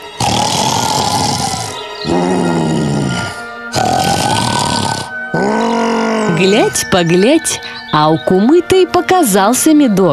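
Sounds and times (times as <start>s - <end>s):
voice imitating a grey wolf snoring asleep in the sun: 0.0s - 6.7s
speech: 6.4s - 10.1s.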